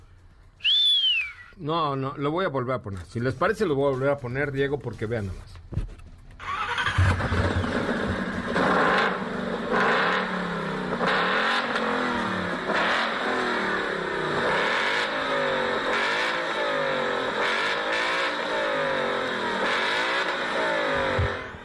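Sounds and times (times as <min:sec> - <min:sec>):
speech: 0:01.6 - 0:05.8
car engine revving with exhaust valves open: 0:06.4 - 0:21.6.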